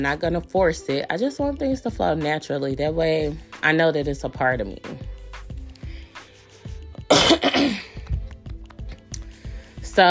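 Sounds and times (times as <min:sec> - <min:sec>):
speech: 0:00.0 - 0:05.1
person clearing throat: 0:07.1 - 0:08.1.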